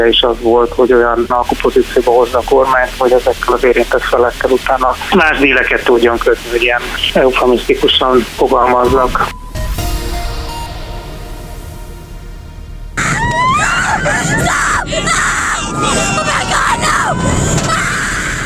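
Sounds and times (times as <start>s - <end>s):
speech: 0.0s - 9.4s
roller coaster rumbling mechanical noise: 0.8s - 17.6s
roller coaster riders screaming: 13.0s - 18.4s.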